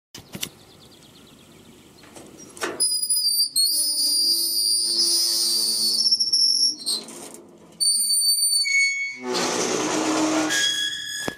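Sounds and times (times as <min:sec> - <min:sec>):
gate noises in Saint Savinien: 0:02.0 - 0:11.3.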